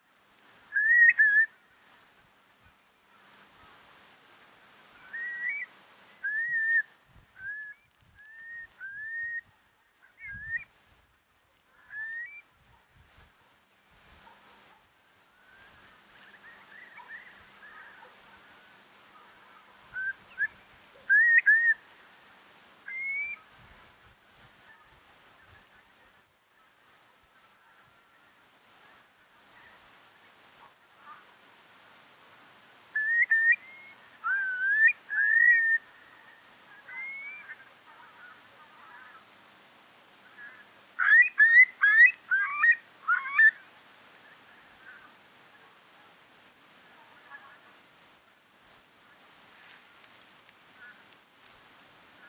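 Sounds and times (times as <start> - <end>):
Numenius arquata arquata calling: 0.7 - 2.0, 4.9 - 10.7, 11.6 - 12.6, 14.2 - 22.1, 22.8 - 23.6, 32.9 - 39.3, 40.2 - 45.7.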